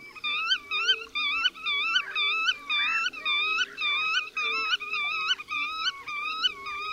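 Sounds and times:
black-tailed godwit nasal calls: 0:00.0 - 0:06.9.

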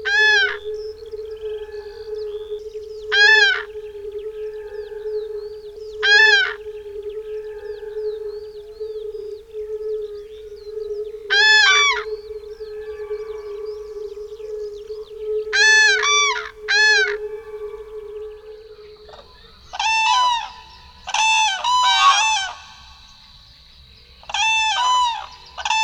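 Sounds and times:
skylark singing: 0:00.0 - 0:22.9
pair of cranes giving trumpeting klangor territorial calls at breeding ground: 0:00.0 - 0:23.2, 0:24.2 - 0:25.8
chorus of fire-bellied toads humming: 0:00.0 - 0:25.8
corn bunting singing: 0:00.0 - 0:25.8.

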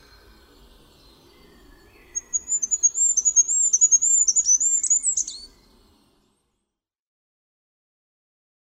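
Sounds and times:
goldcrest song: 0:00.0 - 0:06.8.

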